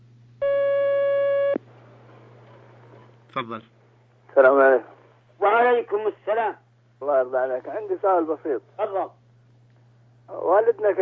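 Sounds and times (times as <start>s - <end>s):
faint low hum: 0.0s - 10.9s
telephone line beep as a phone call is taken: 0.4s - 1.6s
speech: 3.4s - 3.8s, 4.4s - 9.2s, 10.3s - 10.9s.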